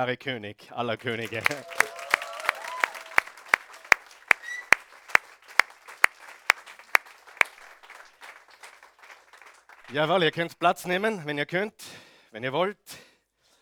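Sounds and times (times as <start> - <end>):
speech: 0.0 - 1.9, 9.9 - 13.1
crowd clapping in rhythmic unison: 0.9 - 11.1.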